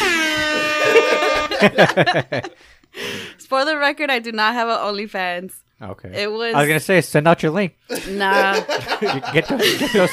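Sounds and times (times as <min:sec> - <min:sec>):
loud sustained air horn blast: 0:00.0 - 0:01.8
burst of choppy laughter: 0:00.3 - 0:02.6, 0:07.9 - 0:10.1
speech: 0:01.1 - 0:10.1.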